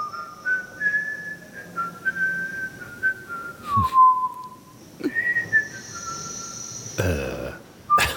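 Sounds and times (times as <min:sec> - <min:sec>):
person whistling a cheerful meandering tune: 0:00.0 - 0:06.8.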